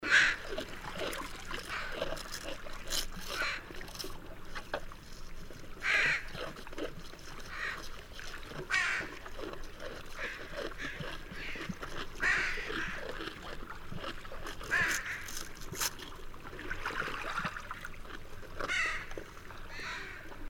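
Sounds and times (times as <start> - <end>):
brown bear eating barnacles: 0.0 - 20.4.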